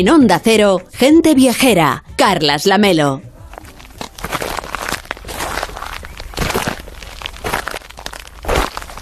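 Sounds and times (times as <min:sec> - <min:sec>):
speech: 0:00.0 - 0:03.3
footsteps walking on gravel: 0:03.5 - 0:09.0.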